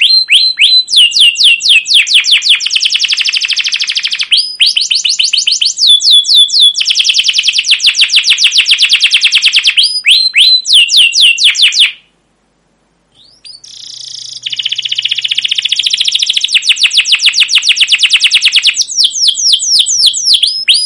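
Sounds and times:
canary song of downslurred chirps and fast rolling trills: 0.0 - 12.2, 13.1 - 20.8.

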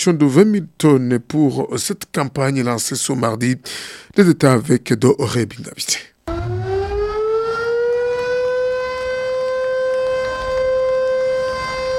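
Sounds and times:
speech: 0.0 - 6.1
sugar factory siren marking start of production campaign: 6.3 - 11.9.

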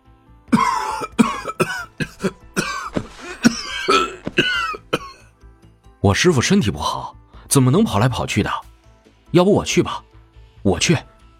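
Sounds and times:
ailing elderly man coughing harshly while clutching his chest: 0.5 - 5.3
ailing elderly man gasping between coughs: 2.0 - 4.4
speech: 6.1 - 8.7, 9.3 - 11.1.

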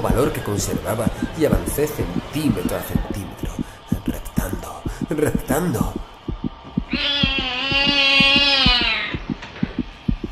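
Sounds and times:
speech: 0.0 - 6.1, 6.9 - 8.4
loud steady heartbeat-like thumping: 0.0 - 10.3
cat meowing: 6.9 - 9.2.

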